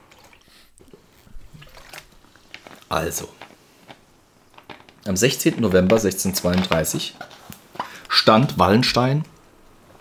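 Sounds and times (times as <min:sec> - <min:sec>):
quiet swallow: 0:00.0 - 0:05.0
sipping water: 0:00.0 - 0:10.0
speech: 0:02.9 - 0:03.4, 0:05.0 - 0:07.4, 0:08.2 - 0:09.3.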